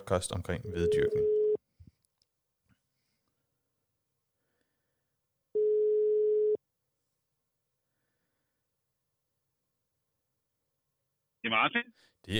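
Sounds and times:
speech: 0.1s - 1.4s, 11.5s - 12.3s
telephone ringback tone while placing call: 0.8s - 1.6s, 5.6s - 6.6s.

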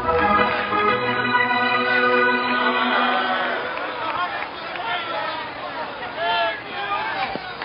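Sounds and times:
large stadium crowd in Cleveland roaring: 0.0s - 7.1s.

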